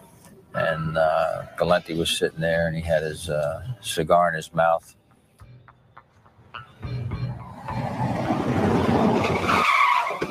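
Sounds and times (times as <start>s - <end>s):
car engine rumbling: 0.0s - 10.3s
speech: 0.7s - 5.0s
car tires screeching skidding to a stop: 6.0s - 10.3s.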